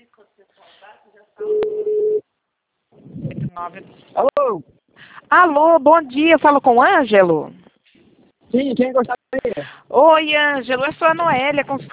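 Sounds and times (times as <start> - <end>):
phone call ringback beep: 1.4 - 2.2
speech: 3.6 - 7.6, 8.5 - 11.9.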